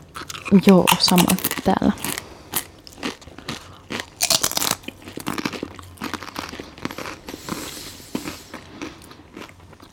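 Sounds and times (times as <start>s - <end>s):
popcorn-flavoured potato chips crunching as someone eats them: 0.0s - 9.9s
speech: 0.5s - 2.2s.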